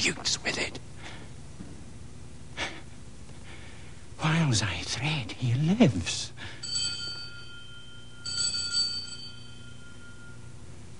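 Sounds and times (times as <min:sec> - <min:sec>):
speech: 0:00.0 - 0:00.7, 0:04.2 - 0:06.3
small bell ringing: 0:06.6 - 0:10.7.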